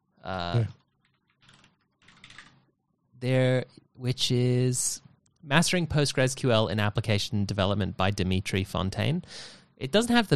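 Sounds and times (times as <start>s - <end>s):
speech: 0.3s - 0.8s, 3.2s - 10.3s
clicky computer keyboard typing: 0.8s - 2.7s.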